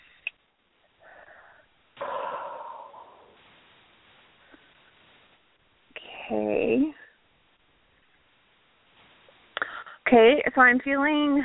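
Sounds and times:
deep breath in: 1.0s - 3.5s
speech: 6.3s - 7.0s, 10.1s - 11.4s.

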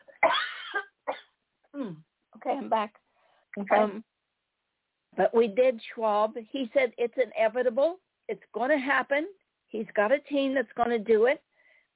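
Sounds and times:
harsh cough: 0.1s - 1.4s
speech: 1.8s - 3.0s, 3.6s - 4.1s, 5.2s - 11.5s.

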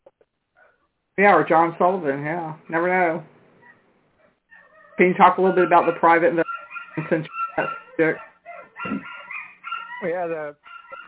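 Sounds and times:
speech: 1.2s - 3.3s, 5.0s - 6.4s, 7.0s - 9.1s, 10.0s - 10.8s
excited dog yelping and howling: 4.5s - 11.0s.

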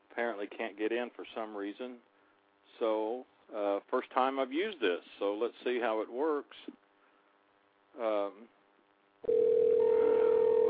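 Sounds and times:
speech: 0.2s - 2.1s, 2.7s - 6.8s, 8.0s - 8.6s, 9.2s - 9.6s
telephone ringing tone of an outgoing call from a radio phone system: 9.3s - 10.6s.

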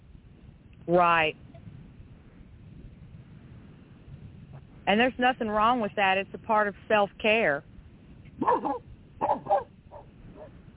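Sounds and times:
speech: 0.9s - 1.4s, 4.9s - 7.7s
dogs barking: 8.4s - 10.5s.

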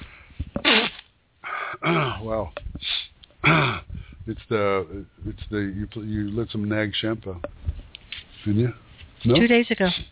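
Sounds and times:
quick catching breaths: 0.0s - 2.2s, 2.8s - 4.3s
person sneezing: 0.6s - 2.2s, 2.9s - 3.8s
speech: 1.9s - 2.6s, 4.3s - 7.6s, 8.4s - 10.0s.

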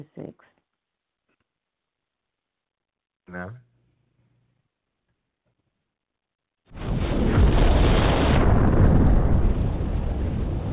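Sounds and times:
speech: 3.3s - 3.6s
bomb exploding in a game match: 6.7s - 10.7s.

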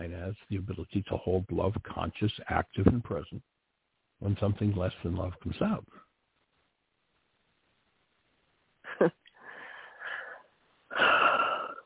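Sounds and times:
speech: 0.0s - 3.6s, 4.2s - 6.0s, 9.0s - 9.2s
deep audible breathing with wheezy whistling exhale: 9.4s - 11.8s.

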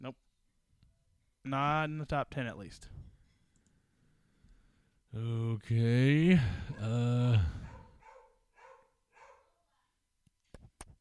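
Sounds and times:
speech: 1.5s - 3.0s, 5.2s - 7.6s
dog barking excitedly: 7.6s - 9.5s.

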